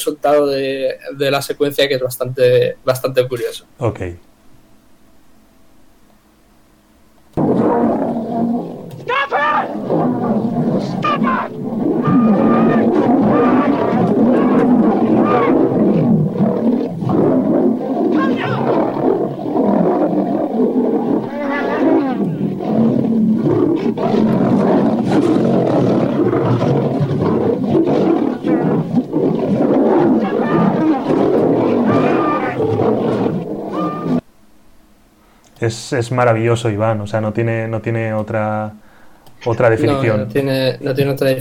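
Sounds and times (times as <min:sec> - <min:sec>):
speech: 0:00.0 - 0:04.3, 0:35.6 - 0:38.8, 0:39.4 - 0:41.3
four lions fighting and roaring: 0:07.4 - 0:34.2.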